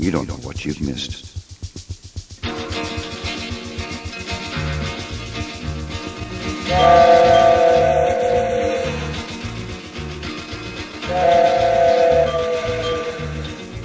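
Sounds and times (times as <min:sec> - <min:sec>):
speech: 0:00.0 - 0:01.3
coal-fired steam locomotive chugging: 0:00.0 - 0:13.8
coal-fired steam locomotive whistle blowing: 0:06.7 - 0:09.4, 0:11.0 - 0:13.6.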